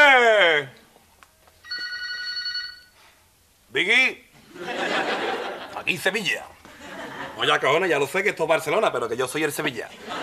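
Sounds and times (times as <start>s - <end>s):
brief vocal exclamation: 0.0s - 0.8s
telephone ringing with an electronic tone: 1.6s - 3.0s
speech: 3.8s - 4.8s, 5.8s - 6.6s, 7.4s - 10.2s
laughter: 4.5s - 5.9s, 6.6s - 7.6s, 9.9s - 10.2s.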